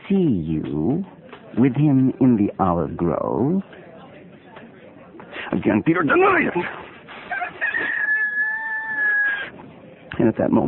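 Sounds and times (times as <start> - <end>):
speech: 0.1 - 3.9, 5.5 - 6.8, 10.2 - 10.6
rooster crowing: 7.3 - 9.5.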